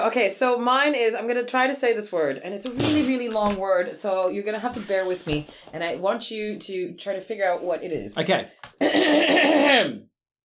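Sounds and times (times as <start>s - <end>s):
speech: 0.0s - 10.1s
person clearing throat: 2.7s - 3.1s, 8.8s - 10.1s.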